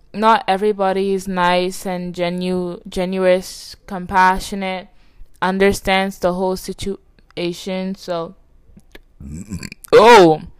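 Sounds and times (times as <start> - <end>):
speech: 0.1 - 8.4, 9.2 - 10.5
louder voiced vocal sound: 9.2 - 10.0
person burping: 9.2 - 10.0.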